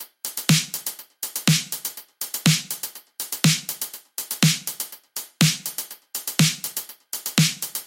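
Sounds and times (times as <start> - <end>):
full drum kit playing: 0.3 - 7.8.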